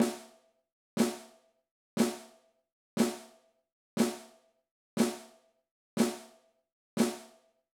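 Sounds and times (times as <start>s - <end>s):
snare drum flam exercise: 0.0s - 0.3s, 1.0s - 1.3s, 2.0s - 2.3s, 3.0s - 3.3s, 4.0s - 4.3s, 5.0s - 5.3s, 6.0s - 6.3s, 7.0s - 7.4s.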